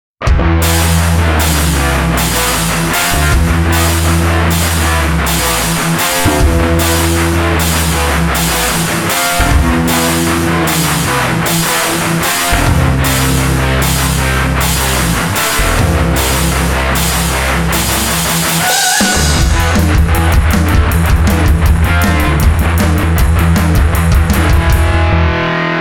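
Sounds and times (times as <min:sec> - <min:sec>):
metal rhythm: 0:00.2 - 0:25.7.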